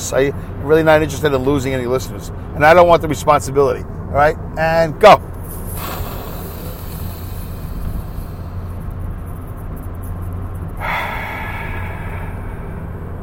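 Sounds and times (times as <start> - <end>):
speech: 0.1 - 6.0
deep breathing close to the microphone: 5.4 - 9.1, 10.8 - 13.2.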